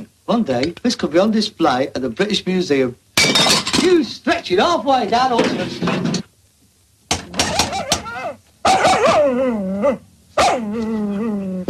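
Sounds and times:
speech: 0.3 - 6.0, 9.3 - 11.6
dog barking: 8.6 - 10.7.

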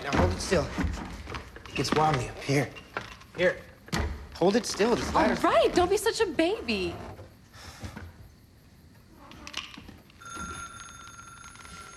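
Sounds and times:
speech: 0.5 - 1.0, 1.8 - 2.8, 3.4 - 3.7, 4.4 - 7.1
telephone ringing with electronic tone: 10.2 - 11.9.

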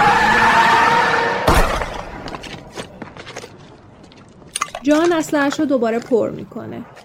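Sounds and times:
car tires skidding as a car drives off during a gunfight: 0.0 - 2.6
speech: 4.8 - 7.0.

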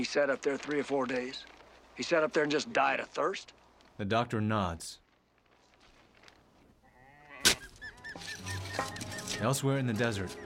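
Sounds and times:
speech: 0.0 - 5.0, 9.4 - 10.4
sheep bleating in panic in a pen in the desert: 6.8 - 7.6.

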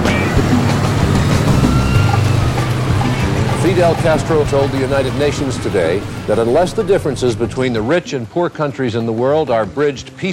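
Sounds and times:
car engine rumble while driving off into traffic: 0.0 - 7.9
road noise: 0.0 - 8.1
speech: 3.7 - 10.3.

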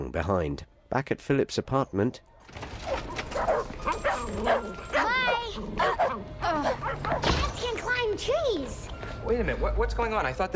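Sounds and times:
speech: 0.1 - 10.5
dogs barking and yelping while chasing a cat: 2.7 - 7.6.

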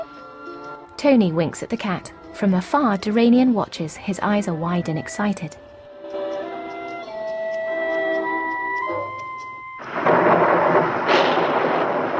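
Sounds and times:
soft music: 0.0 - 9.8
speech: 1.0 - 5.7
torrential rain pouring down: 9.8 - 12.1.

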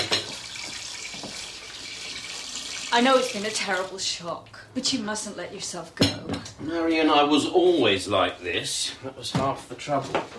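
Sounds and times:
tap water running into a kettle: 0.0 - 4.0
speech: 3.0 - 10.3.

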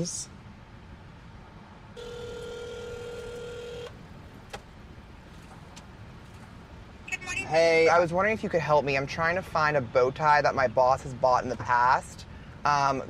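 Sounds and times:
speech: 0.0 - 0.4, 7.5 - 13.0
car interior rumble: 1.6 - 7.8
electronic phone ringing tone: 2.0 - 4.0.

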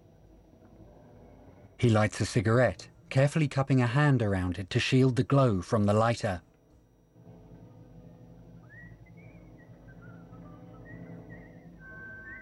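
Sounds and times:
speech: 1.8 - 6.5
person whistling a soft wandering tune in a wooded area: 8.6 - 12.3.

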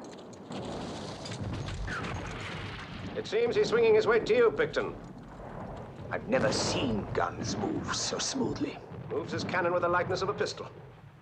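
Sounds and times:
clip-clop of hooves of several horses ridden by officers on a battlefield: 0.0 - 2.8, 4.5 - 6.2
low rumble: 2.3 - 11.2
speech: 3.2 - 5.1, 6.1 - 11.0.

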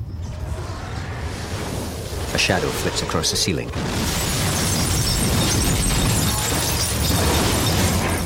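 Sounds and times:
debris noise: 0.1 - 8.2
speech: 2.3 - 4.4
bus windows bursting and glass shattering: 2.3 - 8.2.

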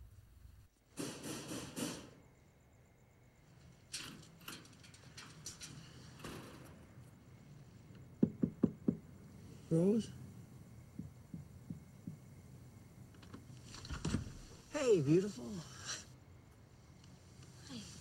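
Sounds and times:
mixed noise: 0.0 - 17.9
knocking on a house door: 8.2 - 9.1, 10.9 - 12.5
speech: 9.7 - 10.2, 14.9 - 15.7.

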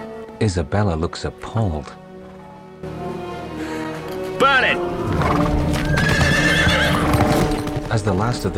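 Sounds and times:
speech: 0.4 - 2.0, 4.4 - 6.0, 7.9 - 8.5
hooves of horses ridden by soldiers clattering: 4.0 - 8.5
horse whinny: 5.1 - 7.6.

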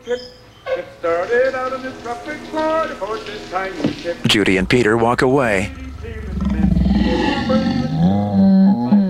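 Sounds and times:
speech: 0.1 - 5.8
lion lounging on a bed roaring: 4.2 - 9.0.

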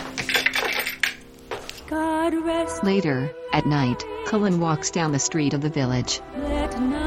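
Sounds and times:
keys dropping and jangling: 0.2 - 1.2
speech: 1.9 - 6.9.

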